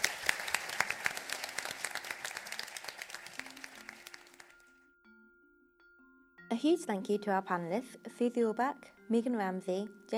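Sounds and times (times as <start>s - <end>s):
audience applause: 0.0s - 4.6s
speech: 6.6s - 10.1s.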